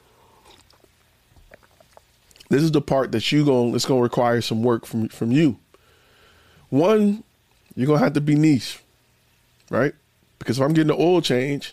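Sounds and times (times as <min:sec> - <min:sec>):
person sipping a drink: 0:00.1 - 0:02.5
soft slurping: 0:00.1 - 0:02.5
speech: 0:02.5 - 0:05.6, 0:06.7 - 0:08.8, 0:09.7 - 0:11.7.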